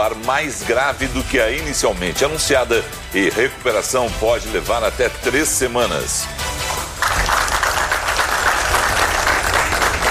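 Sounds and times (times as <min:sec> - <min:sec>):
speech: 0:00.0 - 0:06.5
crowd applause at hospital discharge on the São Paulo coast: 0:06.7 - 0:10.0.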